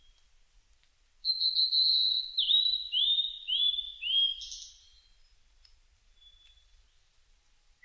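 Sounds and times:
blue-and-white flycatcher song: 1.2s - 5.2s, 6.2s - 7.0s.

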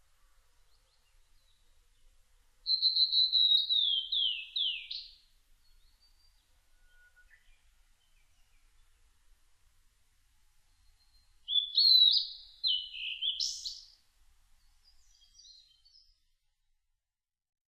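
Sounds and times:
blue-and-white flycatcher song: 2.7s - 5.1s, 11.5s - 13.9s.

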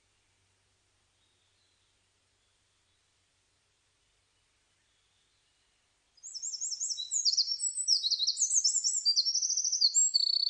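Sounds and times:
Eurasian wren singing high fast trills and twittering notes: 6.2s - 10.4s.

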